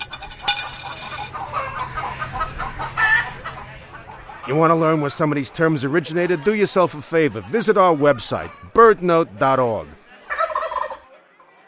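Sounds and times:
chickens clucking in a chorus: 0:00.0 - 0:09.1, 0:10.2 - 0:11.1
chicken squawk: 0:01.3 - 0:04.6
speech: 0:04.5 - 0:10.0.

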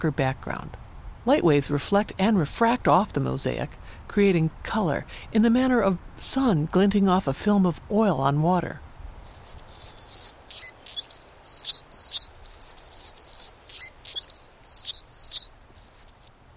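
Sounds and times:
speech: 0:00.0 - 0:09.5
Male Anna's hummingbird giving scratchy, buzzy, high-pitched squeaky phrases: 0:09.2 - 0:16.3.

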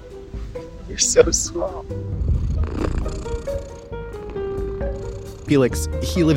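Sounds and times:
speech: 0:00.9 - 0:03.9, 0:05.5 - 0:06.3
small cat purring: 0:01.2 - 0:06.3.

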